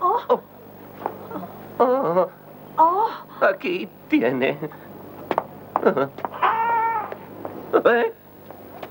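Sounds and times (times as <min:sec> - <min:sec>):
speech: 0:00.2 - 0:00.6, 0:01.8 - 0:02.4, 0:03.4 - 0:04.9, 0:05.8 - 0:06.3, 0:07.7 - 0:08.2
kitten meowing: 0:06.4 - 0:07.2.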